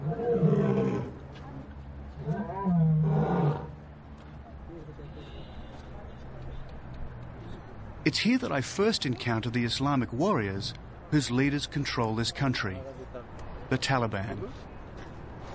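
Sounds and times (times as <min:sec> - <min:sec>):
lion roaring: 0:00.0 - 0:01.1, 0:02.2 - 0:03.7
speech: 0:08.1 - 0:14.7.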